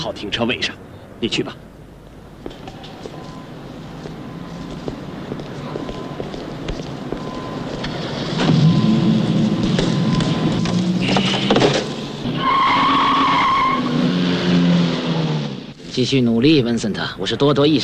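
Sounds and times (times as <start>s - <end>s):
speech: 0.0s - 1.7s, 16.0s - 17.8s
BMW car engine driving: 0.7s - 15.9s
BMW car tires squealing while skidding: 7.3s - 15.7s.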